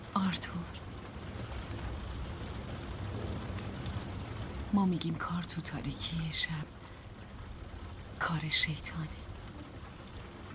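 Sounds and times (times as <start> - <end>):
rain falling at night: 0.0 - 10.5
speech: 0.2 - 0.9, 4.7 - 6.8, 8.3 - 9.2.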